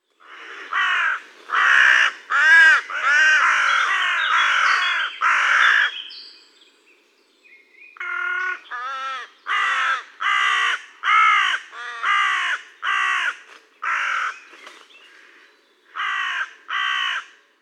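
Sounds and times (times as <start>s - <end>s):
Corvus corone crow: 0.2s - 6.0s, 8.0s - 17.4s.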